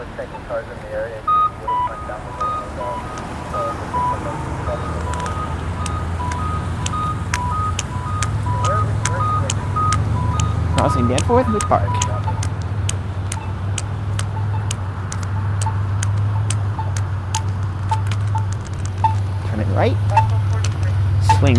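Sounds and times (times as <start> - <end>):
constant rumble of passing street traffic: 0.0 - 21.5
speech: 0.2 - 4.9, 10.8 - 12.1, 19.8 - 20.1, 21.4 - 21.5
two sets of steady electronic beeps: 1.2 - 21.5
sharp clicks: 4.8 - 21.5.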